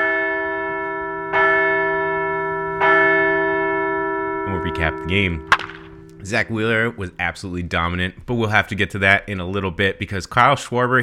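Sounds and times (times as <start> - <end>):
large bell ringing: 0.0 - 8.0
speech: 4.7 - 5.6, 6.2 - 11.0.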